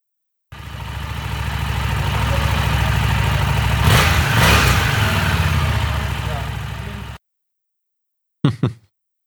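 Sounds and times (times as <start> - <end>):
stock 750 motorcycle engine revving with muted exhaust: 0.5 - 7.2.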